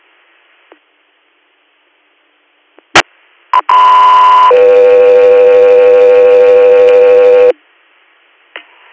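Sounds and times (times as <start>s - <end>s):
radio dispatch paging tones for interfacility medical transport: 3.6s - 7.5s.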